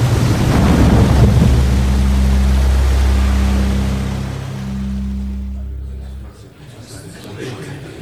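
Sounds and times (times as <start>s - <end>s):
huge tidal wave surging around a boat: 0.0s - 5.8s
low steady rumbling drone: 0.0s - 6.5s.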